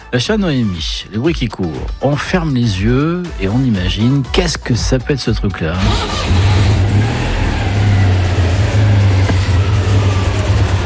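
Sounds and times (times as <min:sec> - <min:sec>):
speech: 0:00.1 - 0:06.7
car engine humming as the car is driven: 0:05.7 - 0:10.8.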